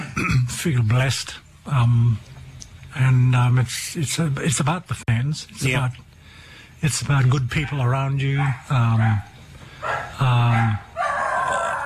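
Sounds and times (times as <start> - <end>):
speech: 0.6 - 6.1, 6.8 - 9.3, 9.9 - 10.9
dogs barking in drawn-out whining bursts: 7.5 - 11.8.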